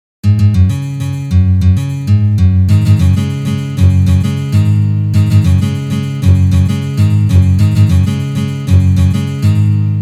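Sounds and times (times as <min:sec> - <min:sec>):
rock guitar exercises: 0:00.2 - 0:09.9.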